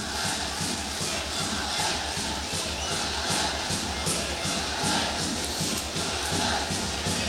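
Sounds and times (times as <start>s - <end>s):
football supporters chanting in stadium: 0.0s - 7.2s
regular pulsing beat of claps or drums: 0.0s - 7.2s.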